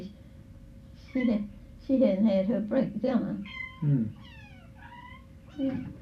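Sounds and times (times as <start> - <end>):
speech: 1.2 - 4.3, 5.6 - 6.0
domestic cat meowing: 3.4 - 6.0.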